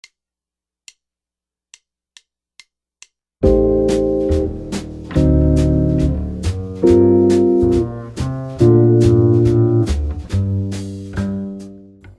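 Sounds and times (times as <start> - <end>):
easy jazz chords: 3.4 - 12.1.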